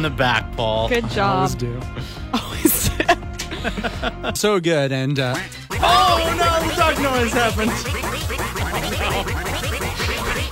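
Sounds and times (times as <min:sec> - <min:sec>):
speech: 0:00.0 - 0:02.6, 0:03.6 - 0:09.5
laughter: 0:02.0 - 0:04.4
duck quack sound effect from a computer: 0:07.7 - 0:10.5.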